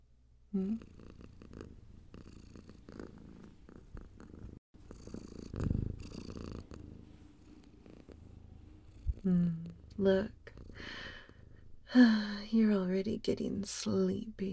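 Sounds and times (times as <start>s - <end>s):
speech: 0.5s - 1.3s, 9.3s - 11.1s, 11.9s - 14.5s
cat purring: 0.5s - 12.0s.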